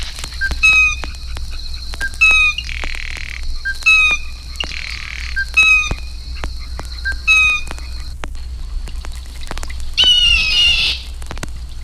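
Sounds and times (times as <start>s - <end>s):
Blue Jay calls: 0.0s - 8.2s, 10.0s - 11.2s
crackle: 0.0s - 11.8s
low hum: 0.0s - 11.8s.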